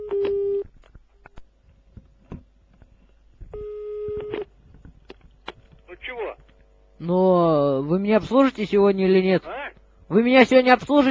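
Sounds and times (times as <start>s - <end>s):
telephone line tone while calling a shop: 3.6s - 4.5s
speech: 7.0s - 7.2s, 8.0s - 11.0s.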